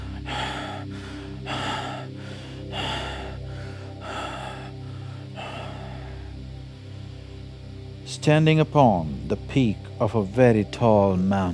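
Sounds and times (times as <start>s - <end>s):
rasping rapid gasps of breath: 0.0s - 6.6s
steady low droning tone: 0.0s - 8.1s
speech: 8.2s - 11.5s.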